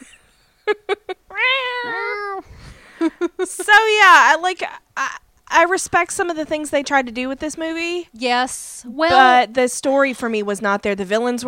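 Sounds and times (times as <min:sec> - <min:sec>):
speech: 0:00.7 - 0:01.0, 0:03.0 - 0:11.4
cat chirping meows and wailing meow: 0:01.3 - 0:02.5.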